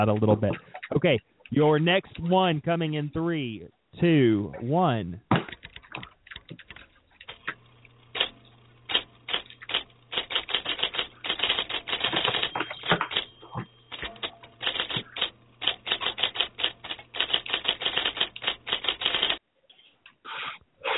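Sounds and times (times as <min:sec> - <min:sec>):
speech: 0:00.0 - 0:05.3
steady faint hum: 0:00.0 - 0:05.3, 0:06.0 - 0:20.9
mechanical typewriter keystrokes clattering: 0:05.5 - 0:19.4.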